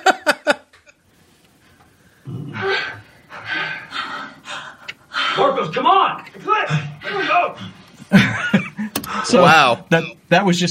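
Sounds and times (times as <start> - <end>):
laughter: 0.0 - 0.9, 8.0 - 9.3
several actors panting and gasping heavily after running: 2.5 - 5.6, 6.6 - 9.4
speech: 5.5 - 8.4, 9.2 - 10.6.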